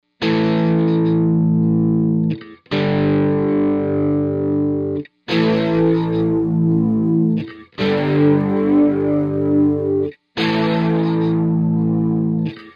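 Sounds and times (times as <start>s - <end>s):
bass with chorus effect: 0.2s - 12.7s.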